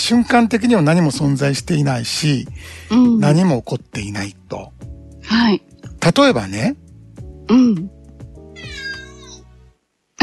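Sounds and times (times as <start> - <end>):
speech: 0.1 - 6.8, 7.5 - 8.0
cat meowing with a wavering pitch: 8.4 - 9.5.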